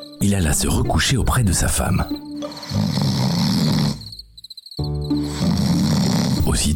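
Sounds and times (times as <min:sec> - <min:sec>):
crickets chirping: 0:00.0 - 0:06.7
speech: 0:00.2 - 0:03.1, 0:06.6 - 0:06.7
deep rumbling snores of an ogre: 0:02.4 - 0:04.2, 0:05.1 - 0:06.7.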